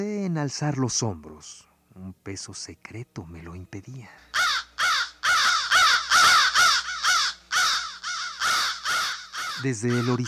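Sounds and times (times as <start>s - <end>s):
speech: 0.0s - 4.6s, 9.6s - 10.2s
flock of crows cawing: 4.3s - 10.2s.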